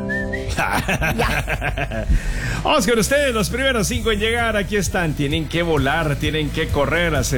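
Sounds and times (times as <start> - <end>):
whistled notes: 0.0 - 0.7
laughter: 0.4 - 2.9
speech: 0.6 - 7.3.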